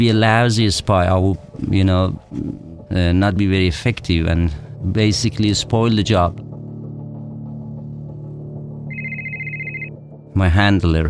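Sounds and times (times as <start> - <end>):
speech: 0.0 - 6.5, 10.4 - 11.0
mobile phone warbling electronic ringtone: 8.9 - 10.0.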